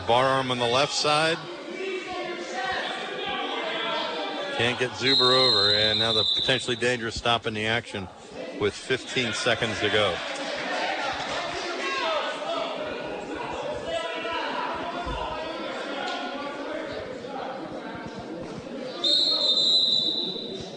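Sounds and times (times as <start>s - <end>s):
crowd murmur at wrestling match: 0.0s - 6.9s, 7.6s - 20.7s
speech: 0.1s - 1.6s, 4.6s - 10.4s
referee's whistle blast at wrestling match: 5.0s - 7.0s, 19.0s - 20.7s.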